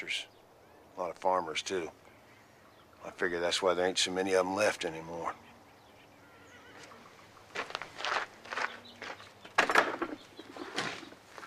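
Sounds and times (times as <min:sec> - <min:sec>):
speech: 0:01.0 - 0:02.0, 0:03.0 - 0:05.5
footsteps walking away on a ranch: 0:06.8 - 0:11.4.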